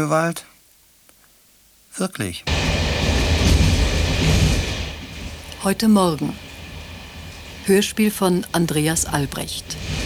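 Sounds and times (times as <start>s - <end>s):
speech: 0.0s - 0.5s, 2.0s - 2.6s, 5.6s - 6.4s, 7.7s - 10.0s
moving rail wagon rumbling on a train ride shortly before Meissen: 2.4s - 10.0s.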